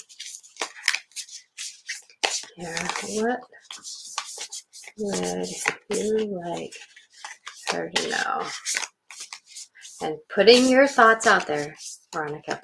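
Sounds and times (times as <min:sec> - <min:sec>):
stiff thick cards being shuffled during a card reading: 0:00.0 - 0:09.9
speech: 0:02.6 - 0:04.0, 0:05.0 - 0:06.9, 0:07.7 - 0:08.8, 0:10.0 - 0:12.6.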